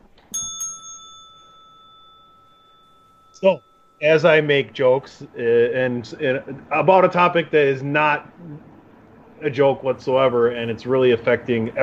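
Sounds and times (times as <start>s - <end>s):
bicycle-style bell ringing: 0.3s - 4.7s
speech: 3.4s - 8.7s, 9.4s - 11.8s.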